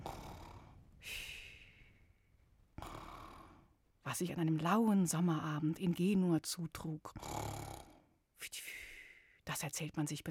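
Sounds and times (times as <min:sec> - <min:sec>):
person imitating snoring: 0:00.0 - 0:00.8, 0:02.8 - 0:03.6, 0:07.2 - 0:08.0
speech: 0:04.1 - 0:07.3, 0:09.5 - 0:10.2.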